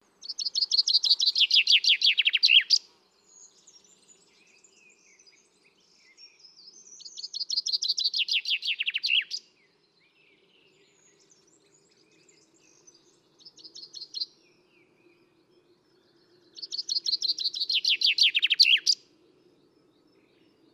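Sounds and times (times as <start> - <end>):
common chaffinch Fringilla coelebs song: 0.0 - 9.6, 10.9 - 14.4, 16.6 - 19.0
faint bird chirps: 0.0 - 20.7.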